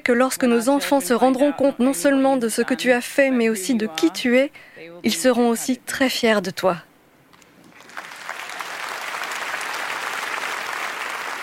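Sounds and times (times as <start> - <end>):
speech: 0.0 - 6.9
standing ovation applause after a speech: 7.6 - 11.4.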